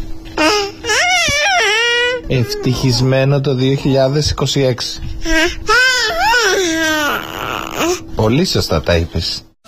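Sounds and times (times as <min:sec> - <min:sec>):
baby babbling: 0:00.4 - 0:03.2, 0:05.2 - 0:08.1
speech: 0:02.3 - 0:05.8, 0:07.9 - 0:09.5.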